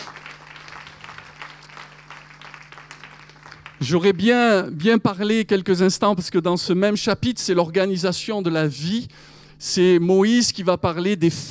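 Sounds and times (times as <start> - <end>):
congregation applauding and cheering during a church service: 0.0 - 4.6
low constant hum: 0.0 - 11.4
speech: 3.8 - 11.4.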